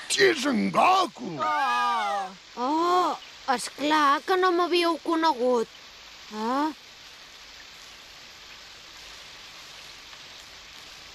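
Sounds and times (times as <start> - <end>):
rain pouring: 0.0 - 11.1
speech: 0.2 - 6.8.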